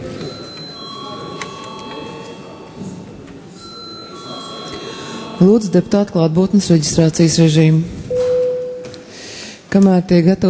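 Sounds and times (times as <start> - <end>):
low murmur of room noise in a parliament chamber: 0.0 - 10.4
electric bell ringing in a parliament chamber for a recess: 0.1 - 6.4
speech: 5.4 - 8.0, 9.8 - 10.4.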